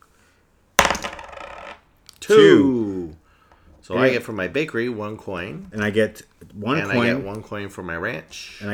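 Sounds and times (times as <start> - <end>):
dice tossed onto a hard table during a board game: 0.8 - 2.2
speech: 2.2 - 3.2, 3.8 - 8.7.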